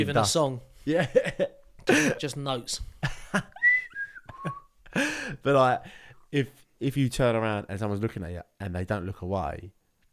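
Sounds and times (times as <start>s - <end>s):
speech: 0.0s - 3.6s, 4.4s - 9.8s
person whistling short wavering notes: 3.6s - 4.7s
soft breathy sounds: 4.9s - 6.3s.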